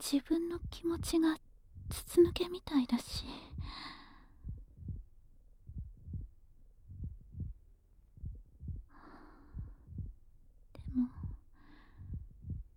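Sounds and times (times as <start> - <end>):
speech: 0.0 - 4.0
steady lub-dub heartbeat: 0.0 - 12.7
soft breathing swells: 3.1 - 6.3, 8.2 - 12.7.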